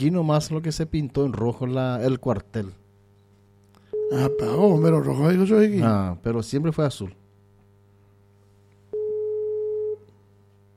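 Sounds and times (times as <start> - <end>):
speech: 0.0 - 2.8, 4.1 - 7.2
faint hum: 0.0 - 10.7
telephone busy tone: 3.9 - 4.8, 8.9 - 10.1.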